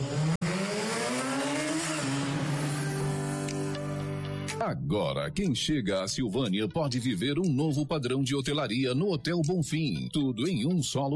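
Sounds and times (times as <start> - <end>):
tires squealing: 0.0 - 3.6
car engine revving hard while accelerating: 0.0 - 4.2
speech: 4.6 - 11.1.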